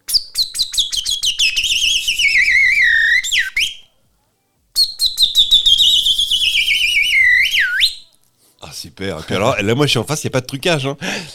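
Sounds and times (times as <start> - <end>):
man whistling an imitation of chaffinch song through his hands: 0.1 - 3.8, 4.8 - 8.1
speech: 9.0 - 11.3.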